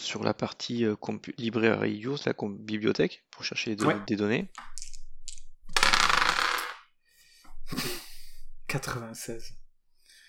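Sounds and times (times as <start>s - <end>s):
speech: 0.1s - 4.8s, 8.7s - 9.6s
dice rolling on a hard table: 4.5s - 6.9s.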